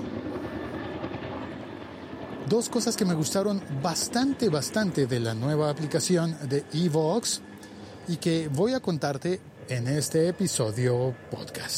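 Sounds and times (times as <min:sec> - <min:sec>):
police helicopter flying overhead: 0:00.0 - 0:11.7
speech: 0:02.5 - 0:11.7.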